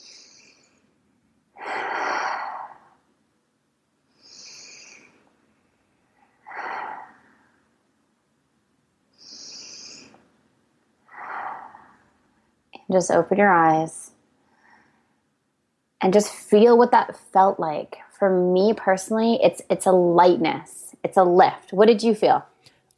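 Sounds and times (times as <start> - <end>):
slow deep breaths during a guided relaxation exercise: 0.0 - 3.1, 4.0 - 7.9, 9.1 - 10.3, 11.0 - 12.6, 14.3 - 15.4
speech: 12.9 - 14.0, 16.0 - 22.5.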